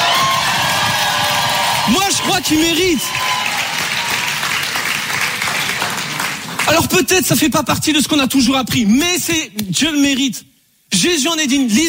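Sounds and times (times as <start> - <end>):
crowd cheering and whooping with cries of joy at a religious gathering: 0.0 - 6.2
speech: 1.9 - 3.2, 6.7 - 11.8.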